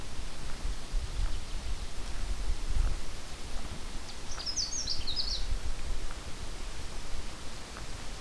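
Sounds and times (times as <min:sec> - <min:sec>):
steady hiss of wind or noise: 0:00.0 - 0:08.1
Canada warbler singing: 0:04.1 - 0:05.5.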